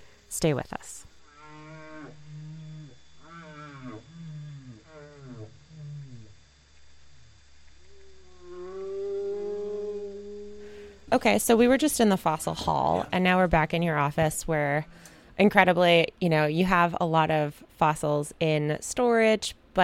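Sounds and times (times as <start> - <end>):
speech: 0.4 - 1.1, 11.1 - 19.8
whale song: 1.2 - 11.1.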